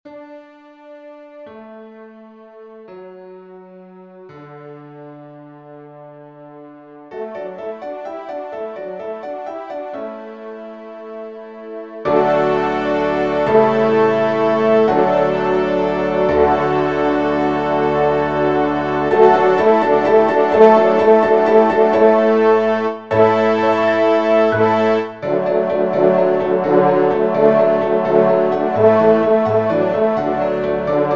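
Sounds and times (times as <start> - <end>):
trumpet and piano: 0.0 - 31.1.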